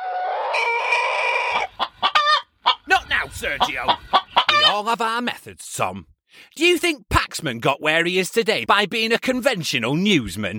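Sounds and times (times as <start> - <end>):
angry fighting rooster crowing: 0.0 - 2.4
angry fighting rooster clucking: 0.0 - 4.8
speech: 3.4 - 10.5.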